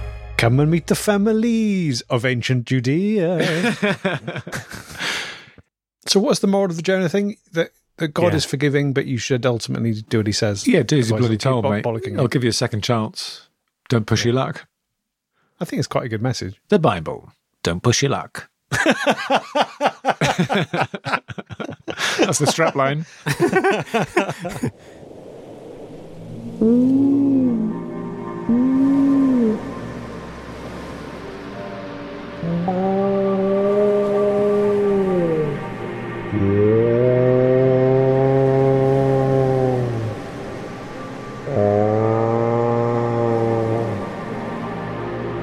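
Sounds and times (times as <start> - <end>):
speech: 0.4 - 5.0, 6.0 - 14.7, 15.6 - 25.0, 26.6 - 27.8, 32.5 - 33.2
laughter: 3.4 - 5.1, 18.7 - 24.7
low steady ocean rumble: 23.5 - 45.4
whale song underwater in the Atlantic Ocean: 24.8 - 45.4.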